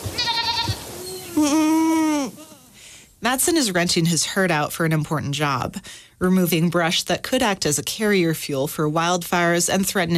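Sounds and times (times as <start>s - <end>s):
goats bleating on a rocky slope: 0.1s - 2.8s
speech: 1.4s - 1.8s, 3.2s - 10.1s.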